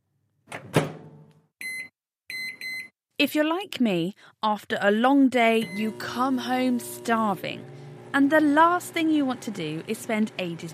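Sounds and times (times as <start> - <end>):
microwave oven door clunking shut with a rattle: 0.5 - 1.2
speech: 3.2 - 10.7.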